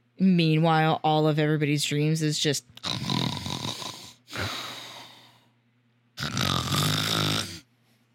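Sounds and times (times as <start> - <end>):
speech: 0.2 - 3.0
voice imitating loud snoring and heavy sleep breathing: 2.8 - 5.1, 6.2 - 7.7.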